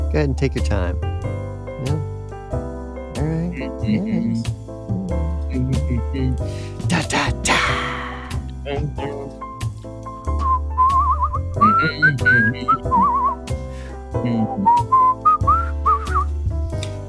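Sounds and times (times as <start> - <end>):
speech: 0.1 - 1.1, 1.8 - 2.6, 3.2 - 7.8, 8.7 - 9.4, 11.6 - 13.2, 14.2 - 15.0
person whistling a wavering trilling tune: 10.4 - 13.6, 14.2 - 16.3.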